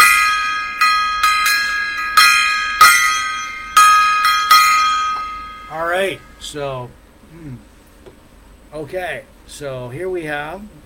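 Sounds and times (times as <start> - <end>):
metal gong struck: 0.0 - 6.4
speech: 6.1 - 7.7, 8.7 - 10.8.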